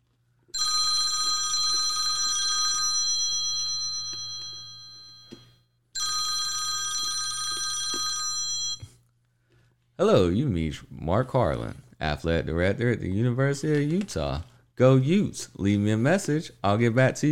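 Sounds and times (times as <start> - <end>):
old-style telephone bell ringing: 0.6 - 8.9
speech: 10.0 - 17.3.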